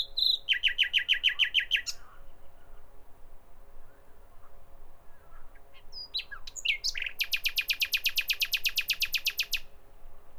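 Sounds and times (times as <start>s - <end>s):
common nightingale singing: 0.0s - 2.1s, 5.8s - 9.7s.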